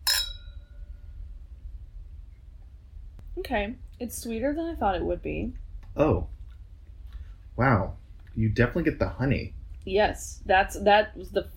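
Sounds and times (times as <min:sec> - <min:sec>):
two glasses of white wine clinking in a toast: 0:00.0 - 0:00.8
low, quiet rumble: 0:00.0 - 0:11.5
speech: 0:03.4 - 0:06.4, 0:07.6 - 0:11.5.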